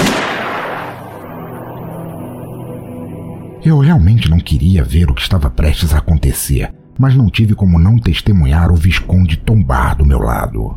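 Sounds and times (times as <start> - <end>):
loud gunshot with long roll: 0.0 - 1.2
speech: 3.6 - 10.7.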